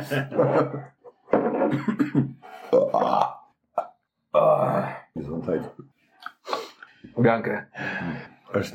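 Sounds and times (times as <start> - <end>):
speech: 0.0 - 1.0, 1.7 - 5.9, 6.5 - 8.7
loud drawn-out burp: 1.7 - 5.0.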